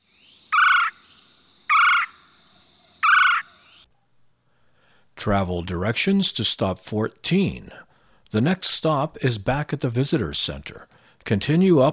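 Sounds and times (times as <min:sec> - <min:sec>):
red-bellied woodpecker calling: 0:00.0 - 0:03.9
speech: 0:05.2 - 0:11.9.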